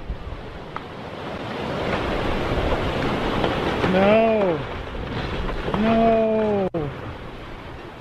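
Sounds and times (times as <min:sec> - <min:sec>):
gusty wind buffeting the microphone: 0:00.0 - 0:08.0
heavy hurricane ocean surf pounding the beach at Buxton, Outer Banks: 0:00.0 - 0:08.0
speech: 0:03.9 - 0:04.7, 0:05.8 - 0:06.2.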